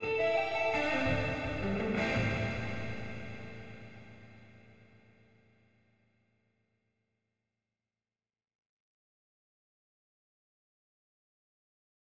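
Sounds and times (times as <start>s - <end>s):
stereo ambient guitar loop: 0.0s - 4.4s.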